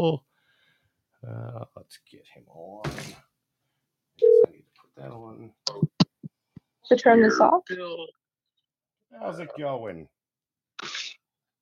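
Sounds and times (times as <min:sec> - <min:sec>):
speech: 0:00.0 - 0:00.3, 0:01.2 - 0:03.3, 0:05.0 - 0:06.1, 0:06.9 - 0:08.2, 0:09.1 - 0:10.2
short loud electronic telephone tone: 0:04.2 - 0:04.5.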